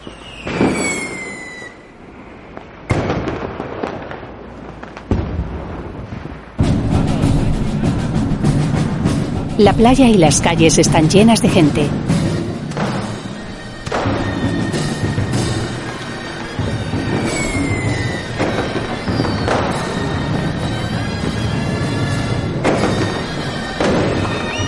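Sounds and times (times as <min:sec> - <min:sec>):
faint whistling tones: 0:00.0 - 0:02.7, 0:13.1 - 0:22.2, 0:22.9 - 0:24.6
gunshots at a historical battle reenactment: 0:02.9 - 0:08.0, 0:12.0 - 0:21.4, 0:22.1 - 0:24.6
outdoor crowd bustle: 0:06.6 - 0:24.6
speech: 0:09.6 - 0:12.1.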